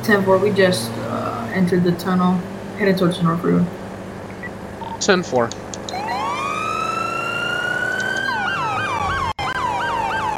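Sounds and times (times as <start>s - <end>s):
speech: 0.0s - 3.8s, 5.0s - 5.6s
emergency vehicle siren wailing and yelping: 5.8s - 10.3s.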